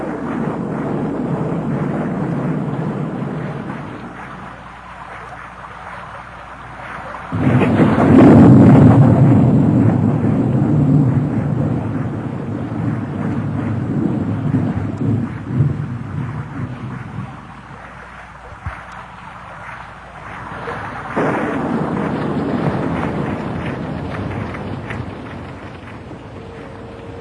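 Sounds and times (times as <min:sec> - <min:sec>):
gusting wind in a storm: 0:00.0 - 0:27.1
pattering rain in a storm: 0:00.0 - 0:27.1
thunder in a storm: 0:00.0 - 0:27.1.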